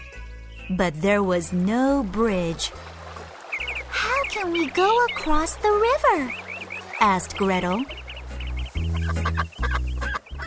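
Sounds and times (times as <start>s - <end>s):
speech: 0.7s - 2.9s, 4.4s - 6.4s, 7.0s - 8.0s
duck quacking at a river: 6.1s - 10.4s.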